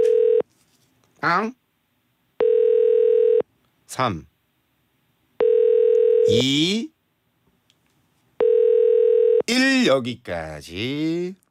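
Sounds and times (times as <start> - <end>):
steady telephone dial tone as a call is placed: 0.0 - 0.4, 2.4 - 3.4, 5.4 - 6.3, 8.4 - 9.4
speech: 1.2 - 1.6, 3.9 - 4.3, 6.3 - 6.9, 9.5 - 11.4.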